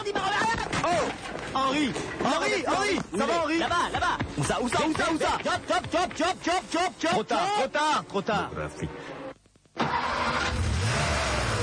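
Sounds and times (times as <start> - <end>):
speech: 0.8 - 9.1
car engine cranking, catching and revving as a man drives away: 9.8 - 11.6.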